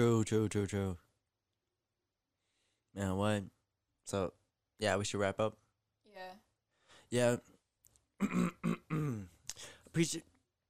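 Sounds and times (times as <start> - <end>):
speech: 0.0 - 1.0, 2.9 - 5.6, 7.1 - 7.5, 8.2 - 10.3
person clearing throat: 8.2 - 9.4.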